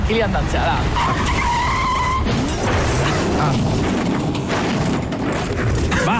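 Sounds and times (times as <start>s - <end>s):
speech: 0.1s - 1.6s, 3.4s - 4.1s
car tires squealing in a skid: 0.9s - 2.6s
crunching crash impact rumble: 2.2s - 6.1s.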